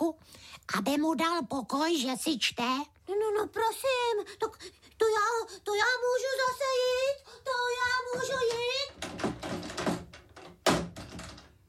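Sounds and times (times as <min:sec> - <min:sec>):
speech: 0:00.7 - 0:09.3
door slammed shut: 0:08.2 - 0:11.5.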